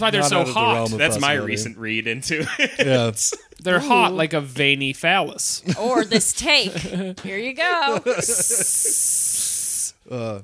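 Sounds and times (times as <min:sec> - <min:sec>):
laughter: 0:00.0 - 0:04.2, 0:05.7 - 0:09.4
speech: 0:00.0 - 0:09.2, 0:10.1 - 0:10.4
person imitating a sizzling hiss with their mouth: 0:08.2 - 0:10.0.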